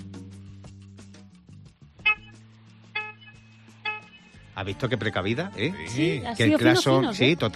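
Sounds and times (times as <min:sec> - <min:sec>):
short bright car horn beeps from a 2013 car: 0:02.0 - 0:02.4, 0:03.0 - 0:04.4
speech: 0:04.6 - 0:07.5.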